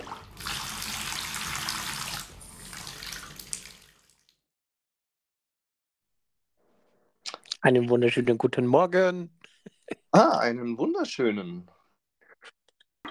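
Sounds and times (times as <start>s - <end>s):
cold water gushing from a bathtub tap: 0.0s - 4.4s
speech: 7.6s - 11.8s.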